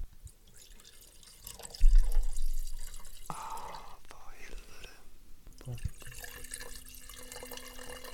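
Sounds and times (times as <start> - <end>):
Château Cantemerle Haut-Médoc Bordeaux wine pouring into a large Bordeaux glass: 0.5 - 4.0, 5.6 - 8.1
speech: 5.7 - 5.9.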